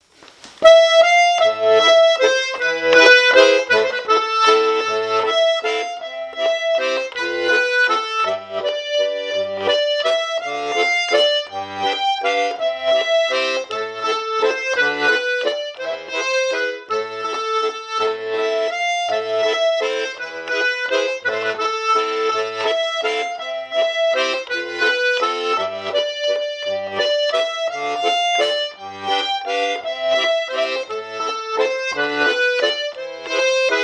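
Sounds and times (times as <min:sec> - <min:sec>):
waltz music: 0:00.6 - 0:33.8.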